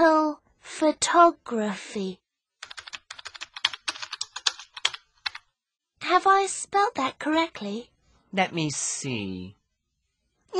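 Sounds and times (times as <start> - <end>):
speech: 0.8 - 2.2, 6.1 - 9.6
typing on a computer keyboard: 2.6 - 5.4.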